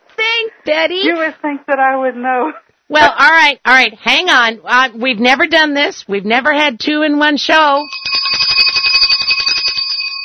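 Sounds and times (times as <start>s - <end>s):
speech: 0.7s - 8.1s
bell ringing: 7.7s - 10.2s.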